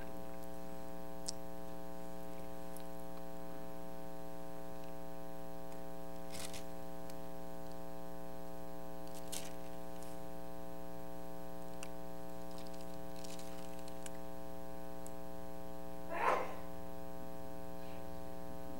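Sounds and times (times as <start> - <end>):
electrical hum: 0.0 - 18.7
person sneezing: 16.1 - 16.7.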